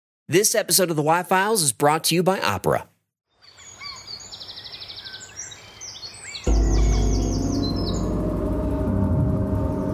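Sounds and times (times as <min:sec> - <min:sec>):
speech: 0:00.3 - 0:02.9
birds singing in a forest: 0:03.3 - 0:08.9
loud low steady rumble: 0:06.5 - 0:09.9.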